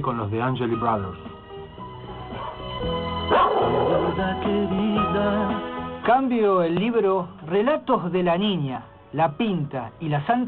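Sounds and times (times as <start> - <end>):
speech: 0.0 - 1.3, 3.7 - 10.4
dog barking: 2.3 - 4.2.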